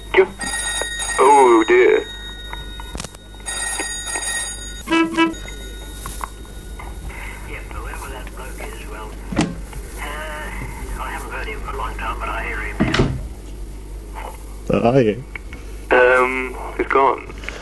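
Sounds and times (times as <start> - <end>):
telephone ringing with a bright electronic trill: 0.0 - 9.1
steady low hum: 0.0 - 17.6
speech: 14.8 - 15.4.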